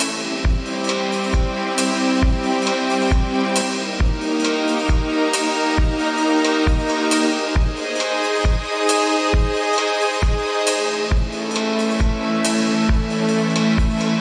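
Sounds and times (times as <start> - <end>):
hi-hats: 0.0 - 14.2
synth pads: 0.0 - 14.2
offbeat kick drum: 0.4 - 0.8, 1.4 - 1.6, 2.2 - 2.5, 3.1 - 3.4, 4.0 - 4.3, 4.9 - 5.2, 5.8 - 6.1, 6.7 - 7.0, 7.6 - 8.7, 9.3 - 9.6, 10.2 - 10.5, 11.1 - 11.4, 12.0 - 12.3, 12.9 - 13.2, 13.8 - 14.1.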